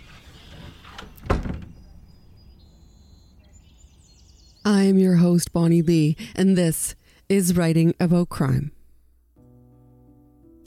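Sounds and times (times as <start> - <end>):
door rattling as it moves: 0.0 - 2.2
door slamming shut: 0.4 - 2.1
speech: 4.8 - 8.8.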